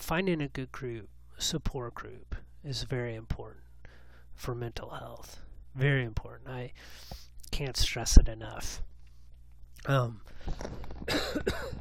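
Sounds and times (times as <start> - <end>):
speech: 0.1 - 3.6, 4.4 - 8.9, 9.8 - 11.8
breathy throat-clearing: 11.0 - 11.8
person coughing harshly: 11.0 - 11.8.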